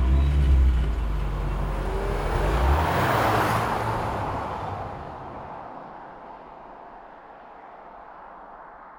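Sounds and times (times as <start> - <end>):
stolen car engine started beside the Congreso de los Diputados in Madrid: 0.0 - 4.4
stolen car pulling away and driving off in Madrid: 0.0 - 5.2.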